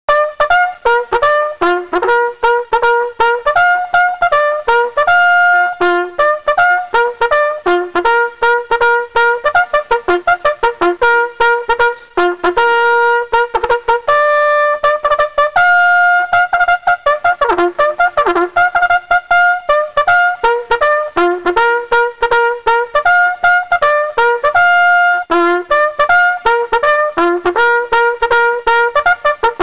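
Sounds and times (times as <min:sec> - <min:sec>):
bugle call: 0:00.1 - 0:29.6.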